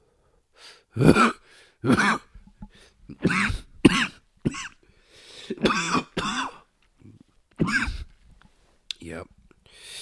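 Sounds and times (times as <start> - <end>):
speech: 1.0 - 2.2
deep harsh coughs: 1.0 - 2.4, 3.1 - 4.8, 5.4 - 6.7, 7.6 - 8.1.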